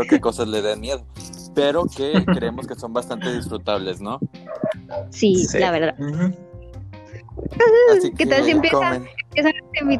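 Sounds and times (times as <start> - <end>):
laughter: 0.0 - 3.9, 8.0 - 9.0
speech: 0.0 - 6.4, 7.5 - 9.9
dogs barking and whining in short loud bursts: 4.5 - 5.2.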